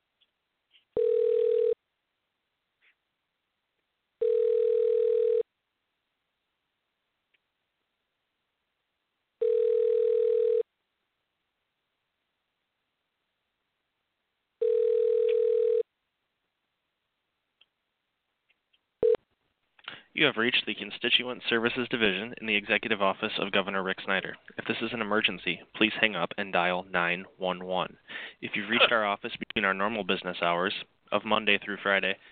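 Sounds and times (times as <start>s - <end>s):
telephone ringing tone while placing a call to a state government office: 1.0s - 1.8s, 4.2s - 5.4s, 9.4s - 10.6s, 14.6s - 15.8s
speech: 20.2s - 32.3s.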